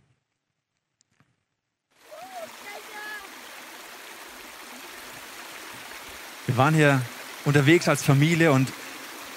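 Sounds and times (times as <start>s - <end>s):
water gushing from a mountain spring: 2.0s - 9.3s
speech: 6.5s - 8.8s.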